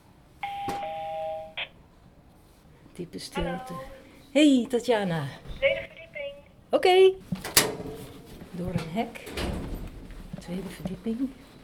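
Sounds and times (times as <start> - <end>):
electronic doorbell tone at a courtyard entrance with mailboxes: 0.4 - 1.6
speech: 3.0 - 5.8, 6.7 - 7.4, 8.6 - 9.6, 10.5 - 11.4.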